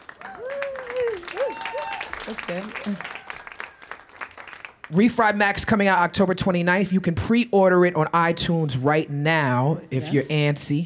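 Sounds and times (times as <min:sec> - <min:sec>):
audience applause: 0:00.0 - 0:04.9
person cheering or whooping: 0:00.2 - 0:03.5
speech: 0:02.3 - 0:03.2, 0:04.9 - 0:10.8.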